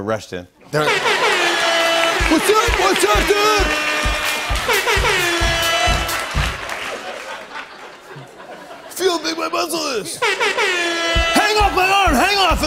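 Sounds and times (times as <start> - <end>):
speech: 0.0 - 1.2, 2.2 - 3.9, 4.7 - 5.3, 9.0 - 12.6
laughter: 0.6 - 12.6
air horn blasts: 1.8 - 6.7, 10.2 - 12.6.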